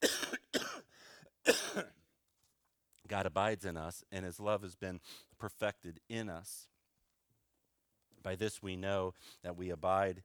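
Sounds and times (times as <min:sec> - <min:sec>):
person coughing: 0:00.0 - 0:02.0
speech: 0:03.1 - 0:06.7, 0:08.2 - 0:10.2.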